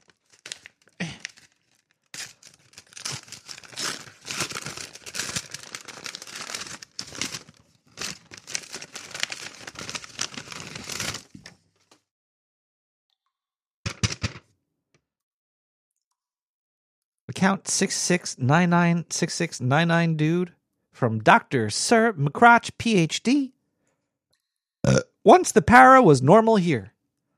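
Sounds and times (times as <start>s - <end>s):
envelope being torn open by hand: 0.0s - 11.4s
paper crinkling and tearing: 0.0s - 12.0s
speech: 17.4s - 23.5s, 24.9s - 26.9s.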